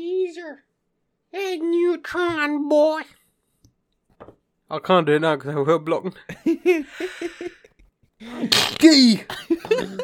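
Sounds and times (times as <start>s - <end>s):
speech: 1.3s - 3.2s, 4.2s - 10.0s
laughter: 6.3s - 8.5s, 9.4s - 10.0s
quick catching breaths: 6.9s - 8.5s
loud sneeze: 8.2s - 9.3s.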